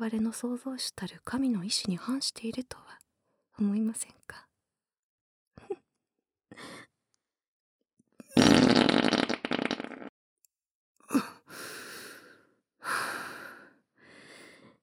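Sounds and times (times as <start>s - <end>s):
speech: 0.0s - 3.0s, 3.6s - 4.5s
loud long sputtering fart: 8.4s - 10.1s
short breathy huffs and sighs: 11.1s - 14.8s.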